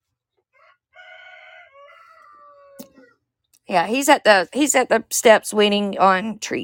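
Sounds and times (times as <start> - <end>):
rooster crowing: 0.6 - 3.2
speech: 3.7 - 6.6.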